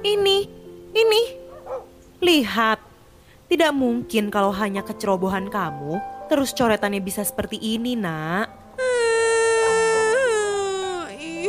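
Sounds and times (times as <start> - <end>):
speech: 0.0 - 2.9, 3.5 - 8.6
girl crying: 8.8 - 11.4.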